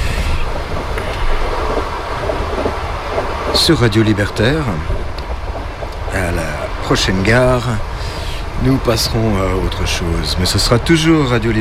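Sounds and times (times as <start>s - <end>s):
train travelling on rails: 0.0s - 11.6s
faint clicks: 0.8s - 6.2s
speech: 3.7s - 5.0s, 6.1s - 7.9s, 8.6s - 11.6s.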